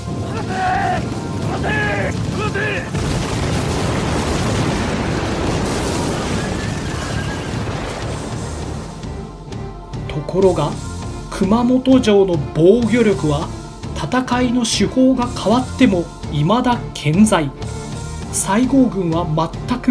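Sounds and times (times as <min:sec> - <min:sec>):
gunfire from a battle at Kumamoto Castle: 0:00.0 - 0:09.1
booming cannon blasts from a battle at Kumamoto Castle: 0:00.0 - 0:09.5
churning roar: 0:00.0 - 0:10.0
speech: 0:10.3 - 0:17.6, 0:18.3 - 0:19.8.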